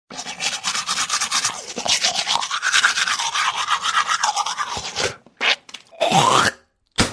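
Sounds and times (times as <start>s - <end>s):
teeth brushing: 0.1s - 5.7s.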